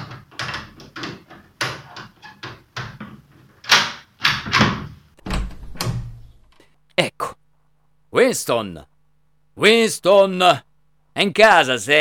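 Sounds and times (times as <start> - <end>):
door being unlocked and opened with a master key: 4.4 - 6.6
speech: 8.2 - 8.9, 9.6 - 11.9.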